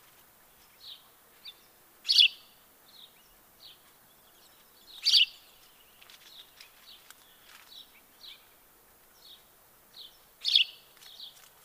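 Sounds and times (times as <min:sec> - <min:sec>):
house sparrow chirping: 0:00.5 - 0:08.6, 0:09.2 - 0:11.4.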